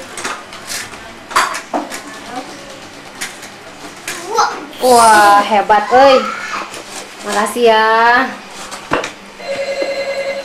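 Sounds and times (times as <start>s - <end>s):
speech: 4.8s - 6.4s, 7.2s - 8.4s
telephone ringing with a warbling electronic tone: 9.4s - 10.4s.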